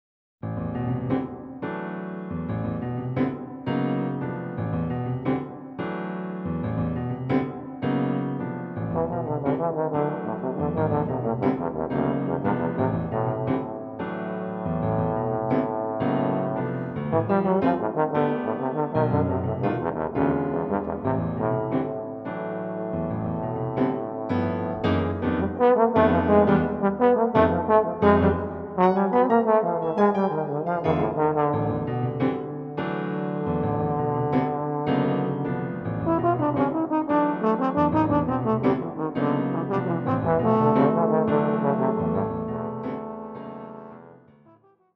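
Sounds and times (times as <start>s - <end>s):
piano playing blues in three: 0.4s - 44.9s
bass trombone playing blues in three: 6.5s - 44.3s
French horn playing blues in three: 8.9s - 44.2s.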